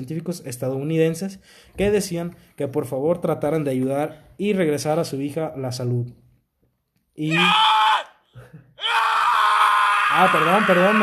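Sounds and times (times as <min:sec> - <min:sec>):
speech: 0:00.0 - 0:06.2, 0:07.2 - 0:08.1, 0:10.1 - 0:11.0
guards screaming in agony while being killed: 0:07.2 - 0:11.0.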